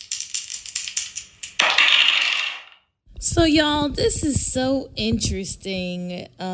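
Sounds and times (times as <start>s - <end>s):
plastic dice shaken in a hand: 0.0s - 2.8s
speech: 3.3s - 6.5s.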